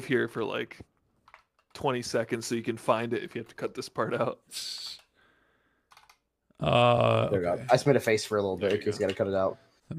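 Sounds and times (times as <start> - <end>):
speech: 0.0 - 0.9, 1.8 - 5.0, 6.6 - 9.9
computer keyboard clicking as to-do notes are typed: 1.2 - 1.8, 5.9 - 6.2.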